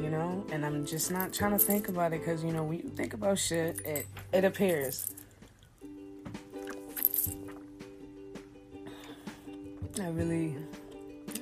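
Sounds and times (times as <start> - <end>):
speech: 0.1 - 5.2, 10.0 - 10.8
person sipping and swallowing water: 6.6 - 7.7.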